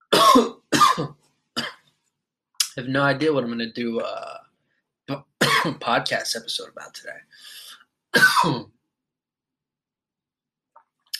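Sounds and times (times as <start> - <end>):
speech: 2.8 - 4.4, 5.1 - 8.8
loud throat clearing with cough-like rasp into microphone: 5.4 - 6.2, 8.2 - 8.6
breathy hiss: 7.3 - 7.8.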